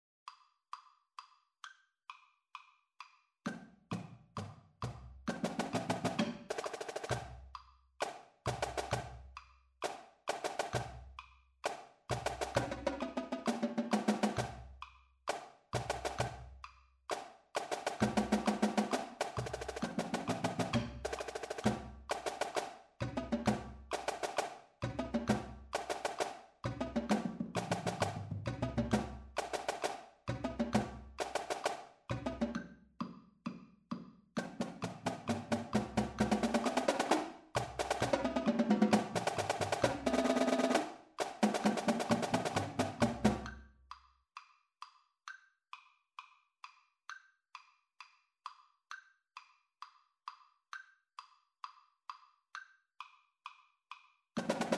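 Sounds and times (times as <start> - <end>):
drumline drumming: 3.5 - 7.4, 8.0 - 9.2, 9.8 - 11.0, 11.6 - 14.7, 15.3 - 16.4, 17.1 - 32.6, 34.4 - 43.6, 54.4 - 54.7.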